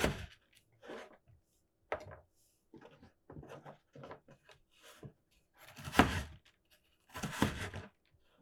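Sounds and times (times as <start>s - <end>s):
knife finely mincing carrots on a board: 0.0s - 0.3s, 5.8s - 6.4s, 7.2s - 7.8s.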